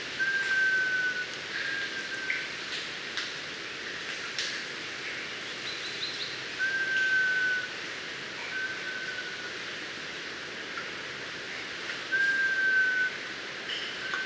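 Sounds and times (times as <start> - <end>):
steady background hiss: 0.0 - 14.2
mangrove robin Melanodryas pulverulenta whistled notes: 0.2 - 2.4, 6.6 - 7.7, 12.1 - 13.1.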